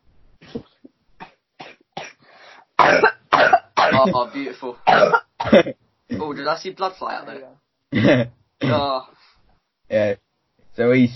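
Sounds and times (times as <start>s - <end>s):
man with COVID-19 coughing: 2.8s - 6.3s, 7.9s - 9.0s
speech: 4.0s - 9.1s, 9.9s - 10.2s, 10.8s - 11.1s.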